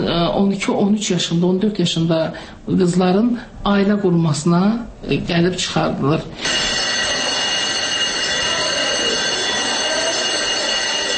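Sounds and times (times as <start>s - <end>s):
speech: 0.4s - 6.8s
school bell ringing: 6.4s - 11.1s.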